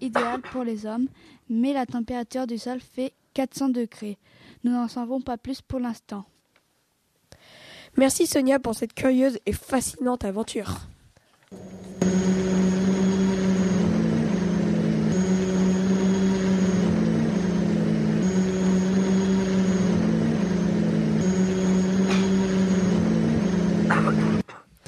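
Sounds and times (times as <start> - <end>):
speech: 0.0 - 6.4, 7.9 - 10.9, 11.5 - 11.9
flying drone motor buzzing: 11.6 - 24.4.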